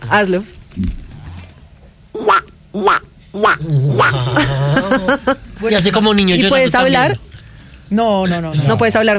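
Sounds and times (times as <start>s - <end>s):
speech: 0.1s - 1.0s, 2.8s - 7.3s, 7.9s - 9.1s
person imitating nasal raspy duck quacks: 2.2s - 5.0s.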